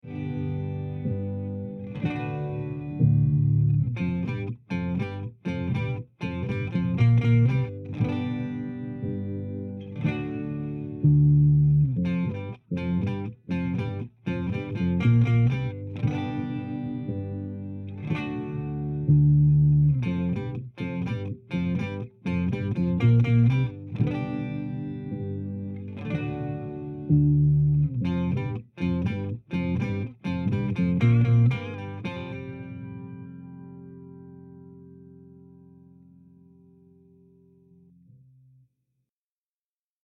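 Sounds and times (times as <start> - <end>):
clean bass guitar through an octaver pedal: 0.0 - 38.6.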